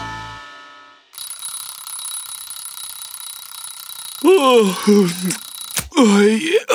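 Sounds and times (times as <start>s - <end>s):
alarm clock ringing with a repeating electronic melody: 1.2s - 6.0s
person speaking: 3.8s - 6.7s.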